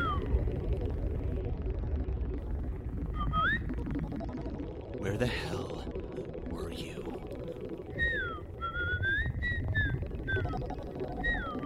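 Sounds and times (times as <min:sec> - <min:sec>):
robot chirping and whistling in electronic warbles: 0:00.0 - 0:00.4, 0:03.1 - 0:03.7, 0:07.9 - 0:11.6
low rumbling hum: 0:00.0 - 0:11.6
speech: 0:05.0 - 0:05.9.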